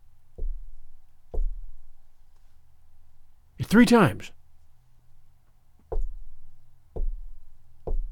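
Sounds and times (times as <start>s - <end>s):
loud hollow knocks on a front door: 0.4s - 1.9s, 5.8s - 8.1s
speech: 3.6s - 4.4s.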